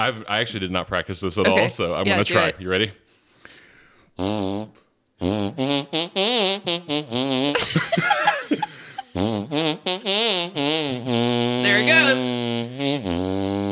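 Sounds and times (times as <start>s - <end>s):
speech: 0.0s - 3.0s, 4.2s - 13.4s
tune played as buzzy farts on a hand: 4.2s - 7.8s, 8.9s - 13.7s
laughter: 7.6s - 9.3s.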